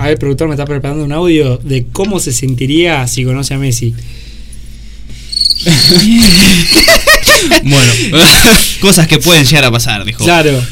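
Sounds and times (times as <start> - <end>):
speech: 0.0 - 4.3, 5.4 - 10.7
crickets chirping at night: 5.3 - 7.3
laughter: 5.7 - 8.7.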